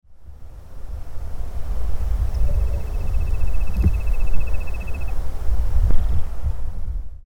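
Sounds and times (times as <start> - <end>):
Nothura maculosa Codorna amarela calling: 1.6 - 6.3.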